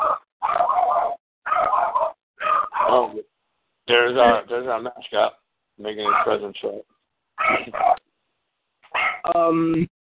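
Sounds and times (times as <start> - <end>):
dog barking: 0.0 - 3.1, 6.0 - 6.5, 7.4 - 8.0, 8.9 - 9.3
speech: 2.9 - 3.3, 3.9 - 8.0, 9.2 - 9.9.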